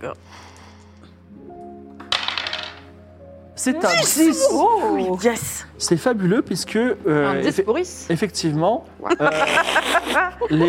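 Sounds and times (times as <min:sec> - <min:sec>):
speech: 0:00.0 - 0:00.6, 0:03.6 - 0:10.6
dice rolled during a tabletop game: 0:02.1 - 0:02.9
laughter: 0:09.0 - 0:10.6.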